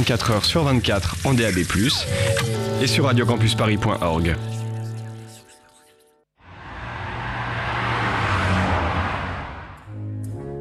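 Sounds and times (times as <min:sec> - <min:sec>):
speech: 0:00.0 - 0:04.6
passing car roar: 0:06.4 - 0:10.2.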